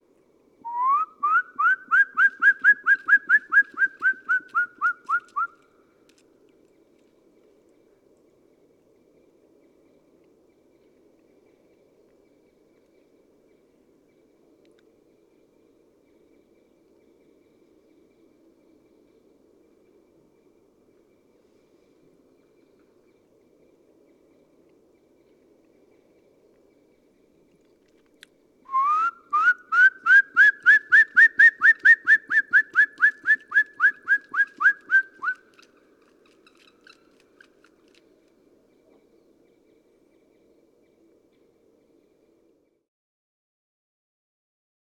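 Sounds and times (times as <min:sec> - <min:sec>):
whistled imitation of Black Woodpecker song: 0:00.6 - 0:05.6, 0:28.7 - 0:35.4.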